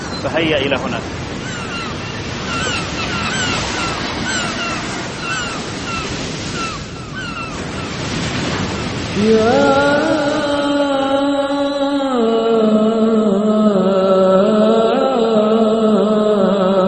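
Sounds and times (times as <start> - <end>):
drawn-out rising tonal call: 0.0 - 8.0
high bird cries overhead: 0.0 - 8.0
ocean waves breaking on shore: 0.0 - 16.8
speech: 0.2 - 1.7, 9.2 - 9.8.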